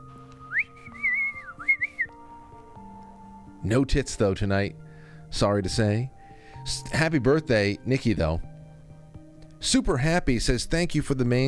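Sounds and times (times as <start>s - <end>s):
person whistling a melody into a microphone: 0.3s - 2.2s
speech: 3.6s - 8.5s, 9.6s - 11.4s.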